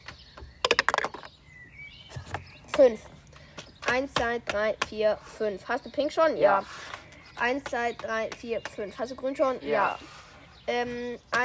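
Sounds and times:
dice clattering: 0.6 - 1.3
speech: 2.8 - 3.1, 3.9 - 11.4.

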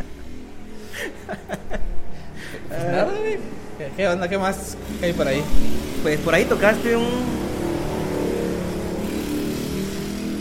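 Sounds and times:
laughter: 0.0 - 3.6
motorcycle engine revving: 2.6 - 10.3
speech: 4.0 - 7.4.

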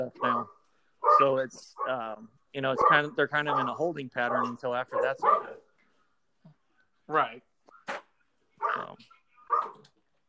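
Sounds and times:
speech: 0.0 - 0.5, 1.2 - 5.6, 7.1 - 8.0
dogs barking at a squirrel in the backyard: 0.0 - 2.0, 2.7 - 5.7, 8.6 - 9.8
dog yip: 2.8 - 5.6, 8.6 - 9.8.

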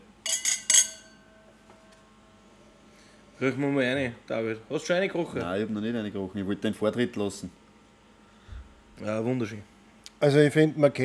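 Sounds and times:
wine glasses clinking in a toast: 0.2 - 1.6
speech: 3.4 - 7.6, 9.0 - 11.0.

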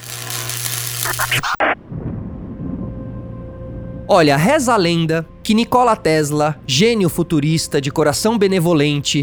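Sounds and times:
rain-like hiss of a thunderstorm: 0.0 - 1.6
speech: 1.1 - 2.0, 4.1 - 9.2
thunderclap: 1.6 - 4.2
low rolling thunder rumble: 1.8 - 5.4.

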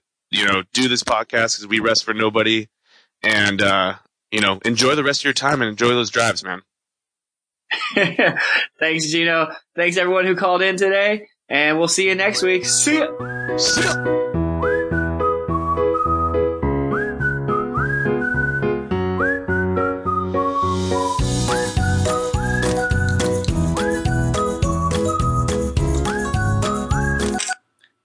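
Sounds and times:
speech: 0.3 - 6.7, 7.7 - 14.3
laughter: 7.7 - 8.7
upbeat intro tune led by a whistled melody over bouncy accompaniment: 12.6 - 27.5.

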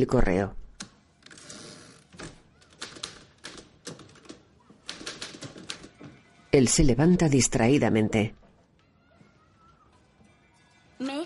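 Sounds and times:
speech: 0.0 - 0.6, 6.5 - 8.4
typewriter keys struck in a newsroom: 2.2 - 6.1.

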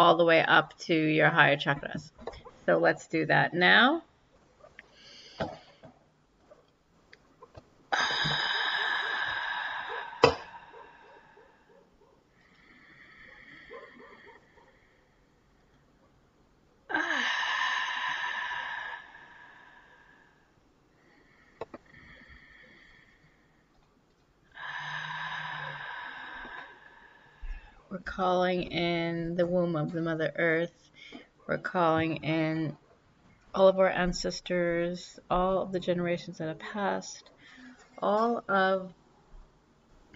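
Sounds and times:
speech: 0.0 - 4.1, 5.4 - 5.6, 28.2 - 32.8, 33.5 - 37.3, 38.0 - 39.0
slow deep breathing from the diaphragm: 4.8 - 6.0, 7.9 - 15.9, 16.9 - 23.8, 24.5 - 27.9, 37.3 - 38.0.

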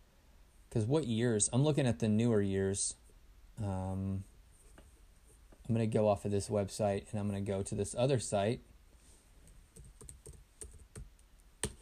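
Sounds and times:
speech: 0.7 - 3.0, 3.6 - 4.3, 5.7 - 8.7
typing on a computer keyboard: 9.7 - 11.8.

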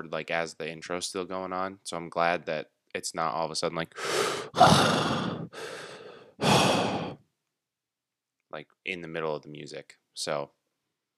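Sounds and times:
speech: 0.0 - 6.9, 8.5 - 10.6
loud harsh gasping breaths into a microphone: 3.9 - 7.2.

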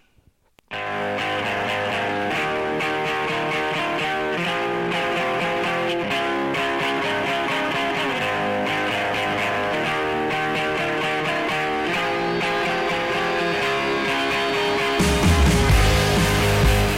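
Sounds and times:
dense distorted guitars: 0.7 - 16.9
full band rock song on a radio broadcast: 0.7 - 16.9.

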